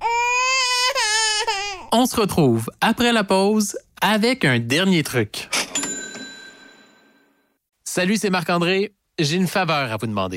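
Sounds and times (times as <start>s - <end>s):
baby wailing loudly: 0.0s - 1.9s
speech: 1.9s - 5.5s, 8.0s - 10.3s.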